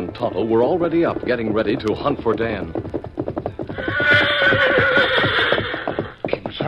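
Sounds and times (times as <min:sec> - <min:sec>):
horse hooves clip-clopping after hard running: 0:00.0 - 0:06.6
speech: 0:00.1 - 0:02.9
horse without its saddle whinnying: 0:03.6 - 0:06.2.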